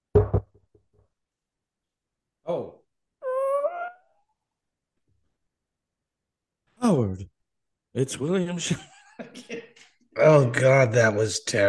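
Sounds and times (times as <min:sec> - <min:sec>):
knocking on a door: 0:00.1 - 0:00.6
speech: 0:07.1 - 0:07.3, 0:07.9 - 0:09.6, 0:10.2 - 0:11.6.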